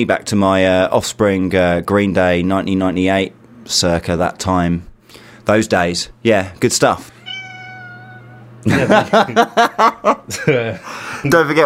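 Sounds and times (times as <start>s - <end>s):
speech: 0.0s - 7.2s, 8.6s - 11.6s
room hum: 0.0s - 11.6s
cat meowing: 7.1s - 8.6s
laughter: 8.6s - 11.5s.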